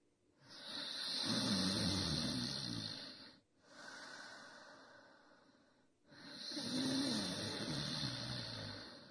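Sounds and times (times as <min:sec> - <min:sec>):
loud rasping snores with wheezy exhales: 0:00.5 - 0:03.3, 0:06.1 - 0:09.0.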